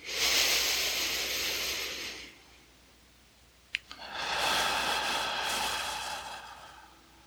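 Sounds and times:
slow deep breathing during a guided breathing exercise: 0.0s - 2.5s, 3.9s - 7.2s.

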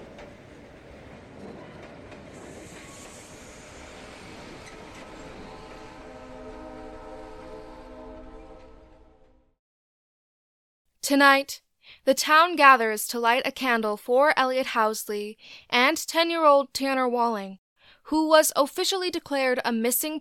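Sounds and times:
train barrelling across the prairie at 80 kilometers an hour, wheels rumbling on track: 0.0s - 9.1s
sustained metallic whining tones of a train: 1.5s - 9.5s
speech: 11.1s - 20.2s.

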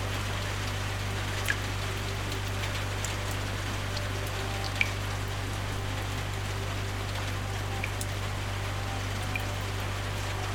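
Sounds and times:
atmospheric ambient music: 0.0s - 10.5s
low sustained hum: 0.0s - 10.5s
steady rain with scattered water drops: 0.0s - 10.5s
brighter water drip clicks: 1.4s - 6.2s, 7.1s - 8.3s, 9.1s - 10.5s.

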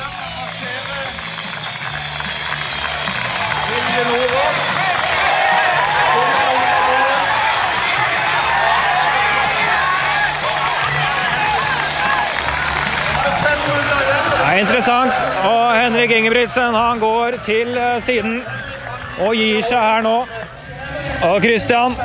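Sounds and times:
stadium crowd clapping: 0.0s - 16.4s
large stadium crowd roaring and cheering: 0.0s - 22.0s
speech: 14.6s - 18.6s, 19.2s - 20.4s, 21.2s - 22.0s.

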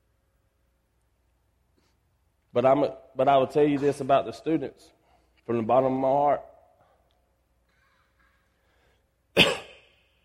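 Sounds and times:
speech: 2.5s - 6.5s
sharp crying cough: 9.3s - 10.2s.

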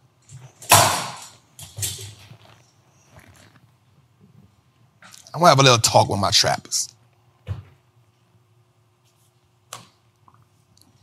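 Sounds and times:
chair rolled across a hard floor: 1.6s - 3.7s
speech: 5.4s - 6.9s.

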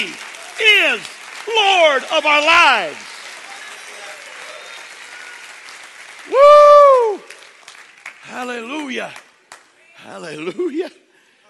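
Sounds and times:
speech: 0.0s - 3.1s, 6.3s - 7.2s, 8.3s - 9.2s, 10.0s - 11.0s
faint murmur of voices: 0.0s - 5.8s
audience clapping hands: 0.0s - 10.3s.

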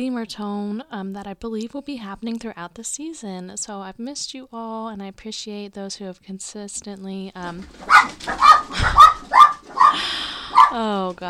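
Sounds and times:
speech: 0.0s - 11.2s
dogs barking: 7.8s - 11.0s.

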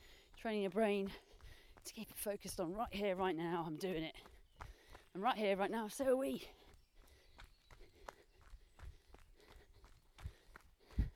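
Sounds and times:
footsteps of a person walking uphill outdoors: 0.0s - 11.1s
speech: 0.4s - 4.3s, 5.2s - 6.6s.

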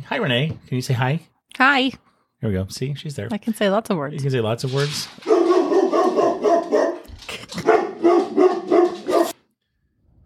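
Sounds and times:
speech: 0.0s - 5.3s
dog barking loudly: 5.2s - 9.4s.

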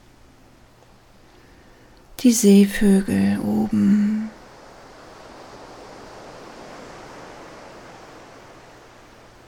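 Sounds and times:
speech: 2.2s - 3.9s
soft rush of ocean surf washing onto a beach: 3.7s - 9.4s.

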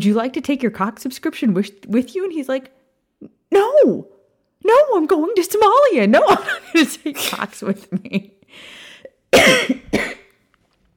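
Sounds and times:
speech: 0.0s - 10.2s
soft raspy breath in: 8.5s - 9.2s
harsh chesty coughs: 9.3s - 10.3s.

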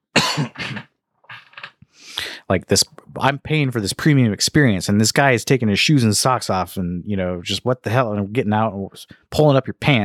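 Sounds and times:
person coughing: 0.1s - 1.7s
speech: 2.5s - 10.0s.

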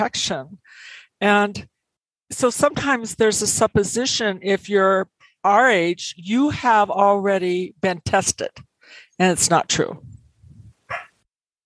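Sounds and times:
speech: 0.0s - 1.7s, 2.3s - 10.1s
dog barking: 10.9s - 11.2s.

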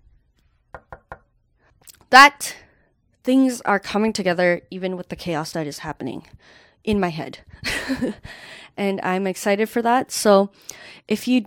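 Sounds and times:
knocking on a wooden surface: 0.7s - 1.3s
speech: 2.1s - 2.6s, 3.2s - 11.4s.

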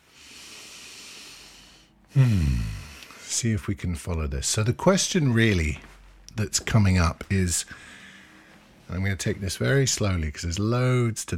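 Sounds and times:
person taking a long airy breath: 0.1s - 3.2s, 7.7s - 8.8s
speech: 2.1s - 8.0s, 8.9s - 11.3s.

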